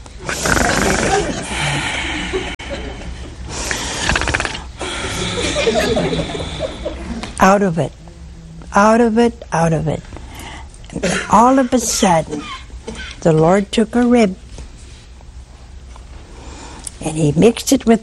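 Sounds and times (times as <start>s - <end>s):
man's voice imitating loud snoring: 0.2s - 2.2s, 3.6s - 5.6s
laughter: 0.7s - 3.5s, 4.8s - 7.3s, 11.0s - 13.2s
speech: 5.7s - 8.0s, 8.7s - 10.2s, 10.9s - 12.6s, 13.2s - 14.4s, 17.0s - 18.0s.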